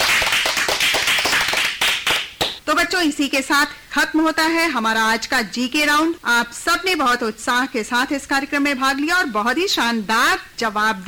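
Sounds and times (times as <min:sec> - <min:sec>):
children applauding at a school general-knowledge quiz: 0:00.0 - 0:02.6
speech: 0:02.7 - 0:11.0.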